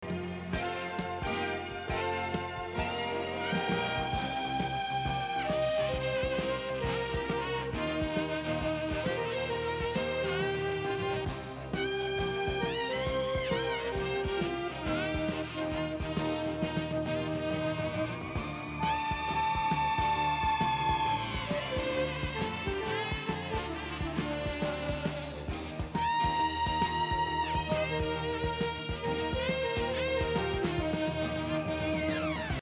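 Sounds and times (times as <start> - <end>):
solo flute playing: 0.5 - 32.4.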